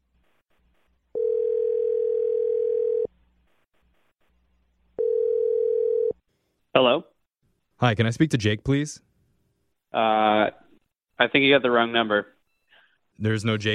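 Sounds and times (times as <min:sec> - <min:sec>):
telephone dial tone: 0:01.2 - 0:03.1, 0:05.0 - 0:06.1
speech: 0:06.8 - 0:07.1, 0:07.8 - 0:09.1, 0:09.9 - 0:10.6, 0:11.2 - 0:12.3, 0:13.2 - 0:13.7.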